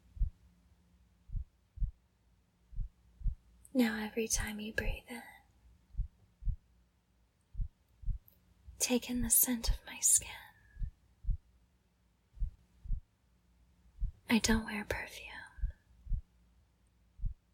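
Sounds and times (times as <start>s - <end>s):
human heartbeat: 0.1s - 0.4s, 1.3s - 2.0s, 2.7s - 3.4s, 5.9s - 6.7s, 7.5s - 8.2s, 10.8s - 11.5s, 12.4s - 13.1s, 14.0s - 14.6s, 15.6s - 16.3s, 17.2s - 17.4s
person whispering: 3.7s - 5.4s, 8.8s - 10.6s, 14.3s - 15.7s
speech: 3.8s - 5.2s, 8.9s - 10.4s, 14.3s - 15.3s.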